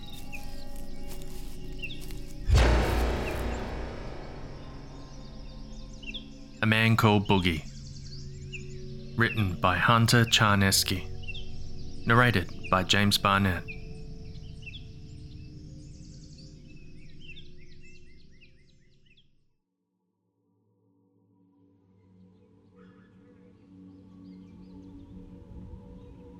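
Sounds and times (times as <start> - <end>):
birds chirping: 0.0 - 19.3
speech: 6.6 - 7.7, 9.2 - 11.1, 12.0 - 13.8.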